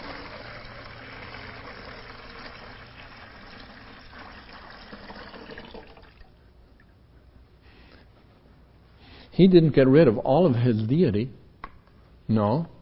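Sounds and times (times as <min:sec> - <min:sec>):
liquid pouring out of a bottle in a gurgling stream: 0:00.0 - 0:06.4
speech: 0:09.4 - 0:11.4, 0:12.3 - 0:12.7.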